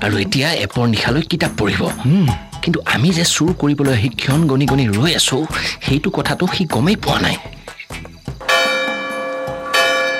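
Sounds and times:
speech: 0.0 - 7.6
clock striking two late at night: 8.5 - 10.1.

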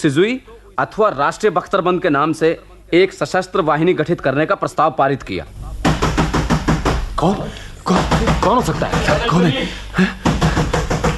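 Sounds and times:
speech: 0.0 - 5.7, 7.2 - 10.4
firm evenly spaced knocks on a door: 5.8 - 7.2, 7.9 - 9.4, 10.2 - 11.1.

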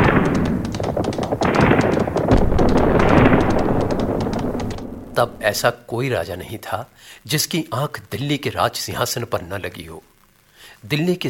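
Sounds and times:
hoofbeats of galloping horses: 0.0 - 5.7
thick rumbling din: 0.0 - 5.7
speech: 5.2 - 10.1, 10.8 - 11.2.

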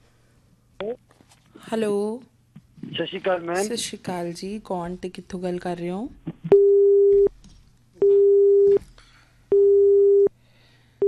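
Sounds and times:
faint noise: 0.0 - 9.6
speech: 0.8 - 2.3, 2.9 - 6.4
telephone busy tone after a call is cut off: 6.5 - 7.3, 8.0 - 8.8, 9.5 - 10.3.

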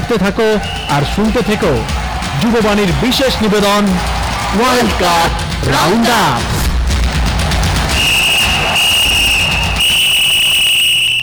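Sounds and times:
speech: 0.1 - 6.6
referee's whistle at a World Cup football match: 0.6 - 1.7, 7.9 - 11.2.

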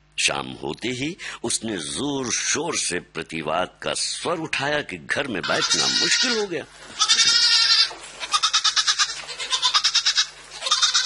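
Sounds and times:
speech: 0.2 - 7.4
goat bleating with a quavering, trilling voice: 5.3 - 11.0.

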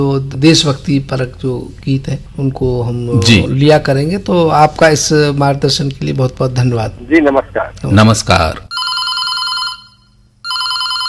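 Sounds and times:
speech: 0.0 - 8.7
bright electronic telephone ringtone signalling an incoming call: 8.7 - 11.0.

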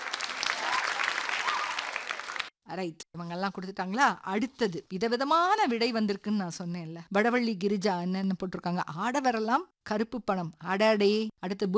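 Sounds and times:
group of people clapping: 0.0 - 2.6
speech: 2.7 - 11.7.

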